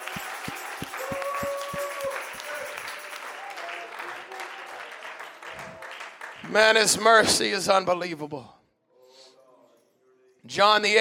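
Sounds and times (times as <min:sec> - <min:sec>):
church audience clapping in a rhythmic beat: 0:00.0 - 0:07.2
speech: 0:06.5 - 0:08.6, 0:10.5 - 0:10.9.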